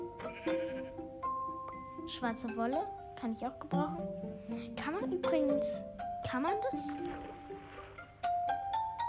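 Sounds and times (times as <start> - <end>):
black sheep bleating in a video game: 0.2 - 1.1
speech: 2.1 - 7.3
steady tonal video game sounds: 5.1 - 9.0.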